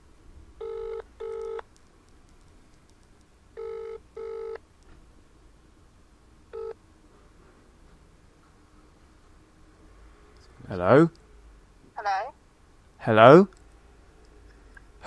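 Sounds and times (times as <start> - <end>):
low hiss: 0.0 - 15.0
phone ringing tone over a speakerphone: 0.6 - 1.6, 3.6 - 4.6, 6.6 - 6.8
speech: 10.7 - 11.2, 13.0 - 13.6.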